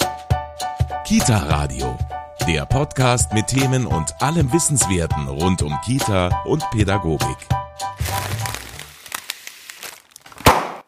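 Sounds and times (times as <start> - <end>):
speech: 1.1 - 7.6
paper sandwich bag crinkling and rustling: 8.0 - 10.8.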